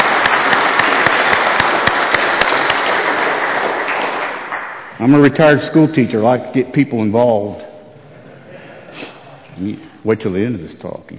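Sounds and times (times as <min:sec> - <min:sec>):
audience clapping: 0:00.0 - 0:05.5
speech: 0:05.0 - 0:07.7, 0:09.6 - 0:11.1.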